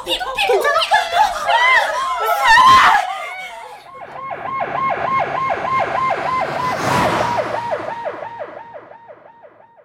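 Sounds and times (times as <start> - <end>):
laughter: 0.1 - 4.0
ambulance siren: 3.8 - 9.8.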